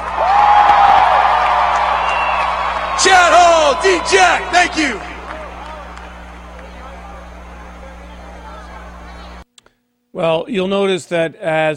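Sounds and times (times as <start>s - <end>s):
rising whoop: 0.0s - 6.1s
large crowd screaming and cheering at a touchdown-dance championship: 0.0s - 9.4s
speech: 3.0s - 5.1s, 10.2s - 11.7s.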